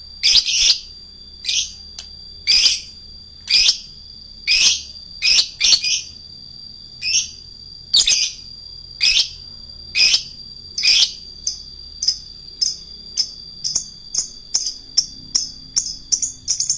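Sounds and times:
Adult fighter-type lovebird chirping: 0.2 - 1.8, 2.5 - 3.9, 4.5 - 6.2, 7.0 - 7.4, 8.0 - 9.4, 10.0 - 16.7.

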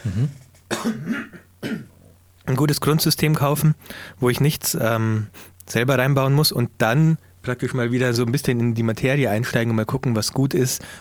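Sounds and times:
speech: 0.0 - 1.8, 2.5 - 10.9
person clearing throat: 0.0 - 2.0.

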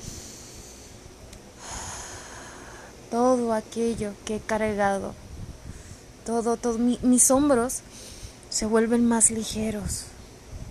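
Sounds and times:
soft airy breathing with breath held and released: 0.0 - 3.1, 5.6 - 6.2, 7.8 - 8.5
speech: 3.1 - 5.2, 6.3 - 10.1.

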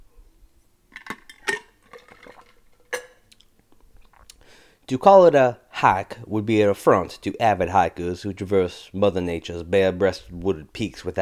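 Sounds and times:
ice clinking against the cup: 1.0 - 3.2
speech: 4.9 - 11.1.

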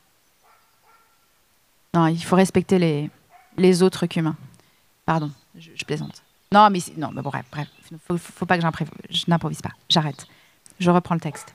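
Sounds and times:
quiet hiss: 0.0 - 11.5
faint dog barks: 0.4 - 1.3, 3.1 - 3.6, 11.3 - 11.5
speech: 2.0 - 4.5, 5.1 - 11.5.

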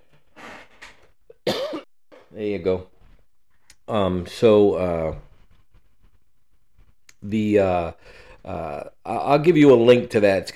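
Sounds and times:
person coughing: 1.4 - 1.9
speech: 2.4 - 2.9, 3.9 - 5.3, 7.2 - 10.5.

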